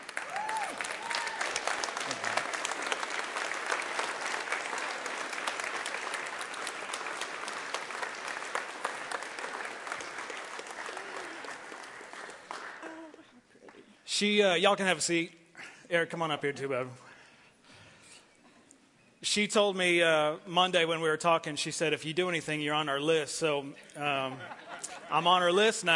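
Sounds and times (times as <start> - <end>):
faint voices and cheers: 0.0 - 2.3
large standing audience applauding: 0.0 - 13.3
speech: 14.2 - 17.0, 19.4 - 25.9.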